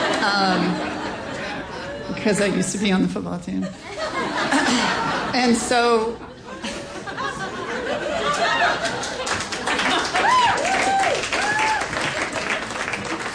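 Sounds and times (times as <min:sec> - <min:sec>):
laughter: 0:00.0 - 0:02.2, 0:03.6 - 0:10.7
speech: 0:00.2 - 0:00.7, 0:02.2 - 0:06.3
audience applauding: 0:08.0 - 0:13.3
audience cheers and whoops: 0:09.9 - 0:12.2.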